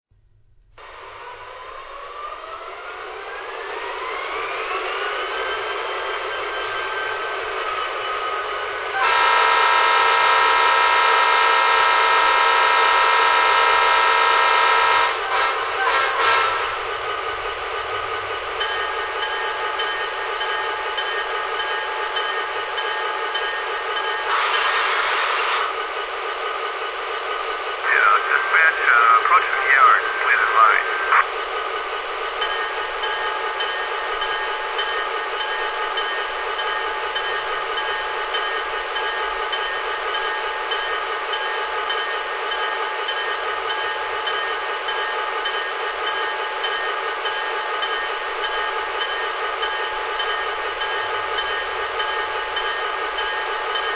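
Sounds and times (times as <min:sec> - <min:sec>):
GP35 electric train: 0:00.1 - 0:53.9.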